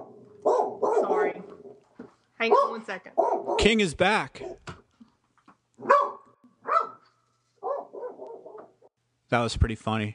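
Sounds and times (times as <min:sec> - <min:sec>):
dog barking: 0:00.0 - 0:01.4, 0:02.4 - 0:03.7, 0:04.4 - 0:04.6, 0:05.8 - 0:08.9
speech: 0:02.4 - 0:04.6, 0:09.3 - 0:10.1.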